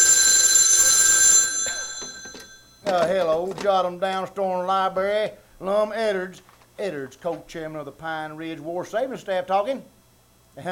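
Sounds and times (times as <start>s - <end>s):
telephone bell ringing: 0.0s - 3.1s
speech: 2.9s - 10.0s.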